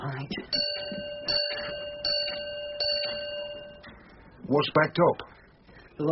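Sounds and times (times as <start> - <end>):
railway signal box bell ringing a four-bell code for a non-stop express: 0.4 - 4.0
speech: 4.5 - 5.3, 6.0 - 6.1.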